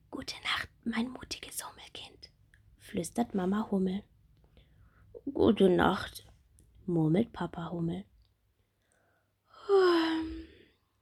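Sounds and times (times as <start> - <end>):
speech: 0.9 - 1.7, 2.9 - 4.1, 5.4 - 6.2, 6.9 - 8.1
soft yawn: 9.5 - 10.7.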